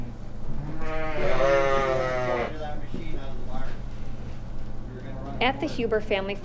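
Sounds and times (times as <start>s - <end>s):
sheep bleating in a barn: 0.6s - 2.5s
speech: 5.4s - 6.4s.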